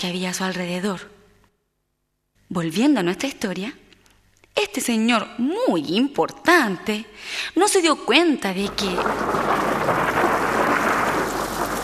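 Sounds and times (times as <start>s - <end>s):
speech: 0.0s - 1.2s, 2.5s - 3.8s, 4.6s - 10.1s
steady pouring rain: 8.6s - 11.8s.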